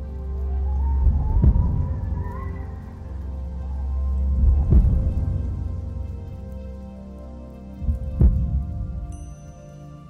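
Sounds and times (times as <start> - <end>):
low steady droning hum: 0.0 - 10.0
loud pounding heartbeat: 1.0 - 2.5, 4.3 - 6.2, 7.8 - 9.1.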